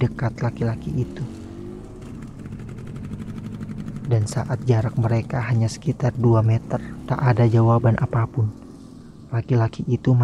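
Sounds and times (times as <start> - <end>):
speech: 0.0 - 1.4, 4.1 - 8.6, 9.3 - 10.2
motorbike engine rumbling as the throttle is opened slowly: 0.0 - 10.2.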